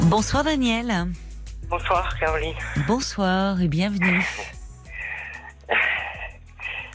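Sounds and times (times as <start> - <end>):
speech: 0.1 - 4.6
heavy breathless panting over a phone line: 4.0 - 6.9.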